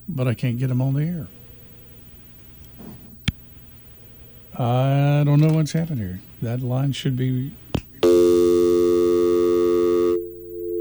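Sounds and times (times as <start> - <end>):
speech: 0.1 - 1.4, 4.6 - 7.6
telephone dial tone: 8.0 - 10.7.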